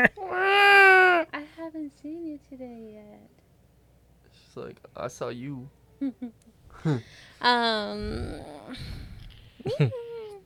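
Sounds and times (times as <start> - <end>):
person imitating a cat with chirps and meows: 0.0 - 1.3, 7.9 - 8.7
speech: 4.6 - 10.0.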